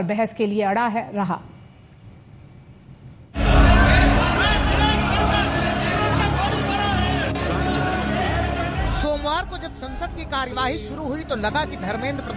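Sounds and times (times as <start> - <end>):
speech: 0.0 - 1.5, 9.6 - 12.3
many voices shouting in a parliament chamber: 3.4 - 12.3.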